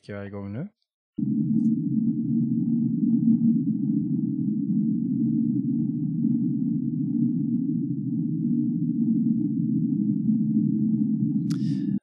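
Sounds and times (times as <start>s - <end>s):
speech: 0.0s - 1.8s
unexplained underwater low droning tone recorded in the ocean: 1.2s - 12.0s
brief crackle: 11.4s - 11.9s.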